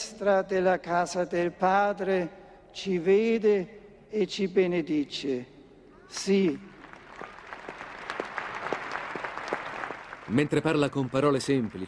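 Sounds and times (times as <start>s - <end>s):
speech: 0.2s - 6.7s, 10.3s - 11.8s
applause from a large assembly during a speech: 6.7s - 11.8s.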